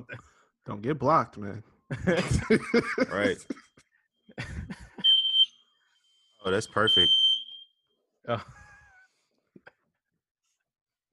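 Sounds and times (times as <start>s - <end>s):
speech: 0.0s - 3.6s, 6.4s - 7.2s, 8.2s - 8.6s
laughter: 1.9s - 5.1s, 8.3s - 9.7s
smoke alarm beeping: 5.0s - 7.8s.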